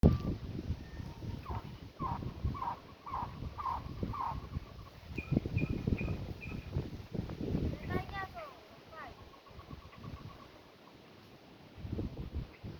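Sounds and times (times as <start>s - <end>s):
strong wind rumble: 0.0s - 10.6s, 11.8s - 12.7s
Cuban trogon song of repeated mid-pitched hooting notes in Cuba: 0.1s - 6.6s.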